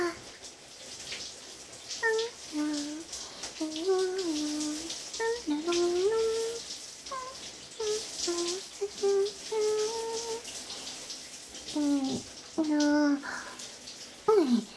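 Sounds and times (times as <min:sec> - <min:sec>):
person speaking in a sing-song way: 0:00.0 - 0:00.2, 0:02.0 - 0:10.4, 0:11.7 - 0:13.5
shower water spraying: 0:00.0 - 0:14.7.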